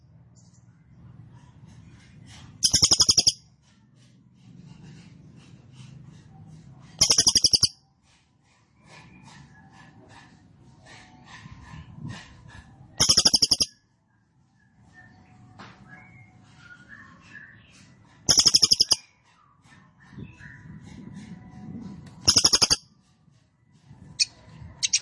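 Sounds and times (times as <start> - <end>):
cililin singing rapid high-pitched rattling trills: 1.7 - 4.1, 6.9 - 7.9, 13.0 - 14.0, 14.7 - 21.6, 22.2 - 24.9.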